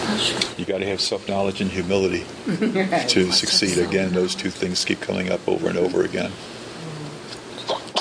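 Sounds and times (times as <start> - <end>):
speech: 0.2 - 6.6
person sneezing: 7.7 - 8.0.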